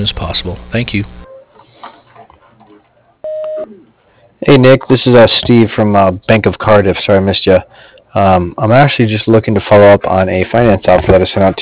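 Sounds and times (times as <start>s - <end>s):
speech: 0.0s - 1.2s, 3.7s - 11.5s
voicemail beep: 3.2s - 3.8s.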